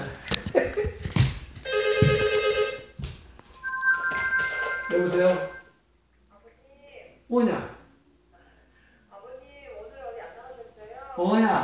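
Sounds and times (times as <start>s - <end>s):
scattered noise: 0.0s - 11.6s
telephone ringing with a bright electronic ringtone: 1.7s - 2.9s, 3.6s - 5.6s
short beep: 3.6s - 5.6s
speech: 5.0s - 5.6s, 7.3s - 7.7s.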